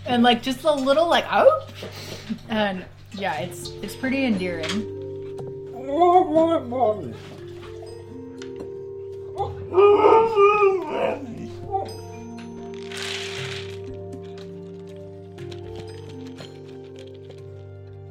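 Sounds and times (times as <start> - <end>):
speech: 0.1 - 5.0, 5.9 - 7.4, 9.7 - 12.0
dog whimpering howls at dinnertime: 5.7 - 7.3, 9.3 - 12.2
rustling: 12.6 - 17.9.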